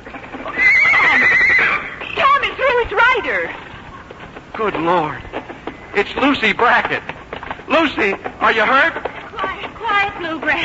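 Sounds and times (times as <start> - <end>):
faint hoof clatter: 0.0 - 10.6
horse neighing: 0.1 - 2.5
speech: 4.6 - 5.3, 6.0 - 7.1, 7.7 - 9.1, 10.0 - 10.6.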